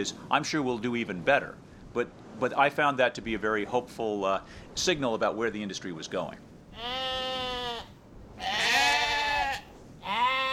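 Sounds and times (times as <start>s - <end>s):
speech: 0.0s - 7.0s
sheep bleating: 6.7s - 10.5s.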